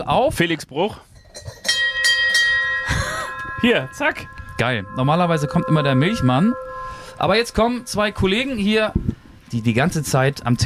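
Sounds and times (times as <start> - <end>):
speech: 0.0 - 1.7, 3.6 - 10.6
bell hanging on the door of a Bavarian wooden hut jingling: 1.4 - 8.7.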